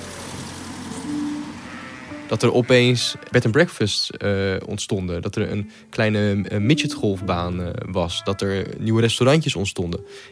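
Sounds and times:
car driving past on the road: 0.0 - 3.5
steady traffic rumble: 0.0 - 6.0
speech: 2.3 - 10.3.

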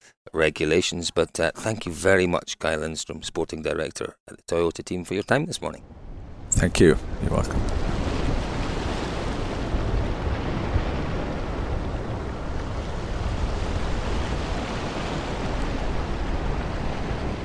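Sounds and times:
speech: 0.3 - 6.0, 6.6 - 7.9
wind aboard a ferry at sea from Tallinn to Helsinki: 4.9 - 17.4.

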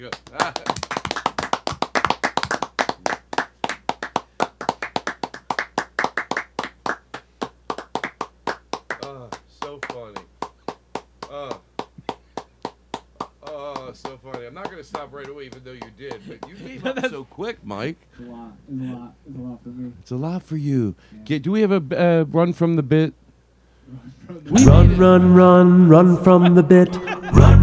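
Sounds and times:
speech: 0.0 - 0.9, 14.3 - 23.2, 24.5 - 27.5
hand clapping from several people and one person: 0.0 - 16.7
people laughing: 16.0 - 17.3, 26.3 - 27.6.

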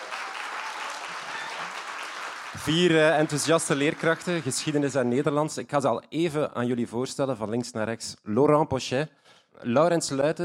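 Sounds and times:
audience applause in a hall at a club event: 0.0 - 5.3
speech: 2.5 - 10.4.

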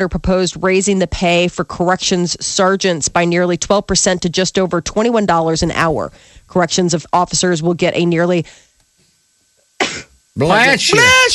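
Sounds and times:
speech: 0.0 - 8.7, 10.0 - 11.3
person sneezing: 9.8 - 10.2.

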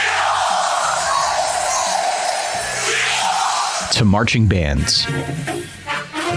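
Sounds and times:
yells and whoops: 0.0 - 3.9
large stadium crowd of football fans screaming and cheering: 0.0 - 4.0
speech: 3.9 - 6.3.

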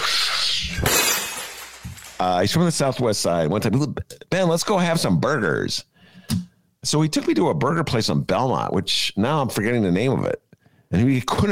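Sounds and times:
glass shattering sound effect: 0.7 - 2.3
scattered glass shards tinkling: 0.8 - 2.2
speech: 2.2 - 11.5.

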